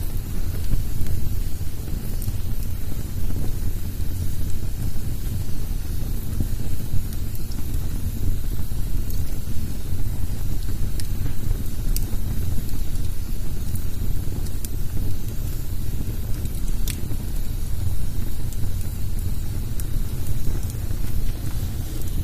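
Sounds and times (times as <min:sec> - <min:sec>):
burning log in fireplace hissing with escaping steam: 0:00.0 - 0:22.2
fire crackling pops: 0:00.0 - 0:22.2.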